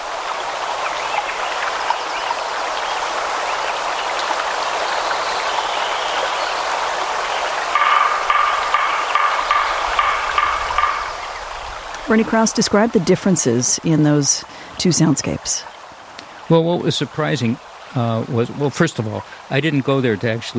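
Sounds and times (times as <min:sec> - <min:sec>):
stream flowing with a steady even rush: 0:00.0 - 0:20.5
woodpecker quick repeated tapping: 0:07.2 - 0:12.7
speech: 0:12.1 - 0:15.7, 0:16.5 - 0:20.5.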